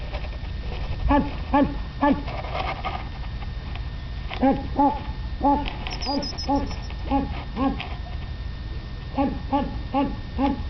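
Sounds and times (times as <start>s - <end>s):
low hum: 0.0s - 10.6s
group of small hedgehogs making piping squeaks: 5.9s - 6.9s.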